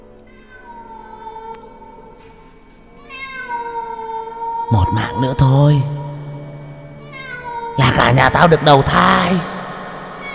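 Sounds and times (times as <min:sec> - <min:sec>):
cat yowling: 0:00.3 - 0:02.0, 0:03.0 - 0:06.0, 0:07.0 - 0:08.1, 0:10.1 - 0:10.3
speech: 0:04.7 - 0:06.0, 0:07.8 - 0:09.5.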